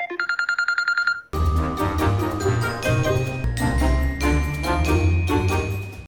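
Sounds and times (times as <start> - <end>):
electronic telephone dialing beeps: 0.0 - 1.3
upbeat music: 1.4 - 6.0.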